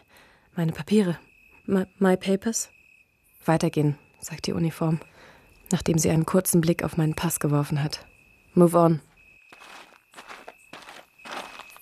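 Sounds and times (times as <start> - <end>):
speech: 0.6 - 2.8, 3.4 - 5.1, 5.7 - 9.1
footsteps walking along a street: 9.5 - 11.8.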